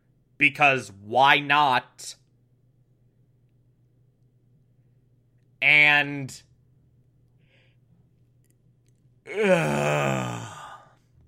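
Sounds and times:
speech: 0:00.4 - 0:02.2, 0:05.6 - 0:06.5, 0:09.3 - 0:10.5
person yawning: 0:09.3 - 0:11.0.

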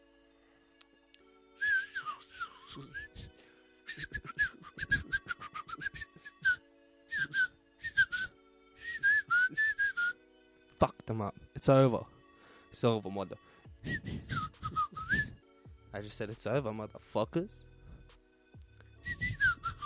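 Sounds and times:
person whistling bird-like phrases: 0:01.6 - 0:03.3, 0:03.9 - 0:10.2, 0:13.8 - 0:15.4, 0:19.0 - 0:19.8
speech: 0:11.1 - 0:12.2, 0:12.8 - 0:14.2, 0:16.0 - 0:17.7.

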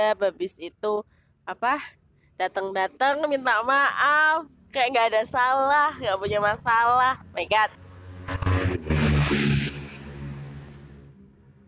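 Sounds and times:
speech: 0:00.0 - 0:09.5
motorbike roaring past at speed: 0:07.6 - 0:11.3.

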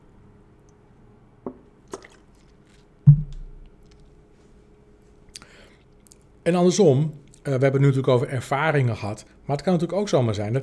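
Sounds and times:
wet lip clicks while sipping water: 0:05.3 - 0:06.3
speech: 0:06.5 - 0:10.6.

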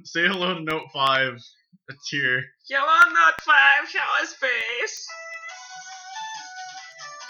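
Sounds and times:
speech: 0:00.0 - 0:05.3
electronic music snippet from a phone soundboard through a small phone speaker: 0:04.4 - 0:07.2.

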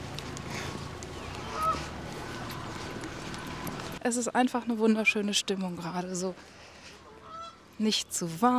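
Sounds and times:
outdoor noise: 0:00.0 - 0:08.5
geese honking, fighting over nesting sites: 0:01.2 - 0:04.0, 0:07.0 - 0:07.6
speech: 0:04.0 - 0:06.6, 0:07.8 - 0:08.5.

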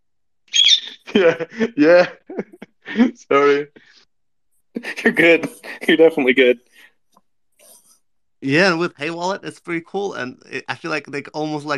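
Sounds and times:
pet bird squawking: 0:00.5 - 0:01.1
laughter: 0:00.8 - 0:03.6, 0:04.8 - 0:06.3
speech: 0:01.2 - 0:04.0, 0:04.8 - 0:06.7, 0:08.4 - 0:11.7.

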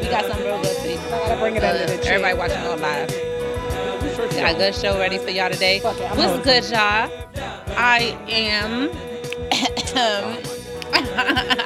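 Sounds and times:
speech: 0:00.1 - 0:03.2, 0:04.4 - 0:11.6
laughter: 0:05.7 - 0:11.6
throat clearing: 0:09.3 - 0:11.6
person coughing harshly: 0:09.4 - 0:11.6.

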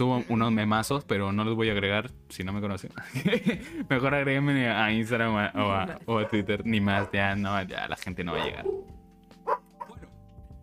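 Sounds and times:
speech: 0:00.0 - 0:08.9
laughter: 0:03.0 - 0:04.0
dog barking: 0:07.0 - 0:07.2, 0:08.3 - 0:10.1.

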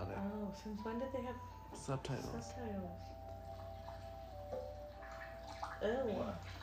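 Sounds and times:
faint tonal hum: 0:00.0 - 0:06.6
speech: 0:00.6 - 0:03.3, 0:05.8 - 0:06.6
grated sweet potatoes washed by hand in water: 0:02.3 - 0:06.6.

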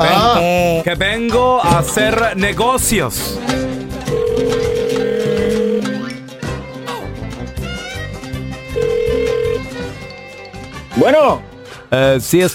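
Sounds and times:
speech: 0:00.0 - 0:04.2, 0:11.0 - 0:12.5
loud music: 0:00.0 - 0:12.4
ringback tone of an outgoing phone call: 0:04.1 - 0:06.1, 0:08.8 - 0:09.8.

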